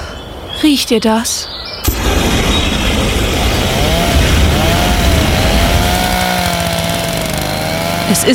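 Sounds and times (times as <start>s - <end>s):
speech: 0.6s - 2.4s, 8.1s - 8.3s
lawn mower running in gardens: 1.9s - 8.3s
pressure washer running in gardens: 3.2s - 8.3s.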